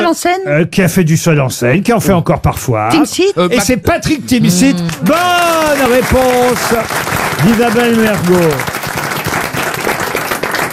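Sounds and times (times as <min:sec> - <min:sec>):
speech: 0:00.1 - 0:08.8
one person hand clapping: 0:04.9 - 0:10.7.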